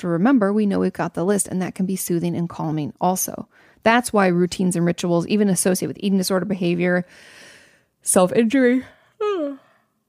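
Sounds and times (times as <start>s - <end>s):
speech: 0.0s - 9.6s
yawn with voiced groan and soft exhale: 9.2s - 9.8s.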